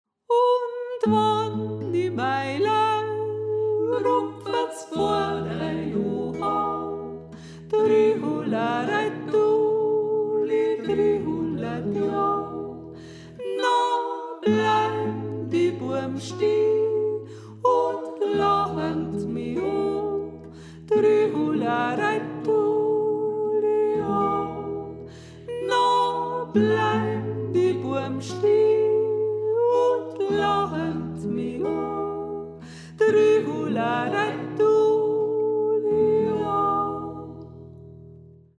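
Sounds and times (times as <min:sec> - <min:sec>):
soprano singing: 0:00.3 - 0:38.0.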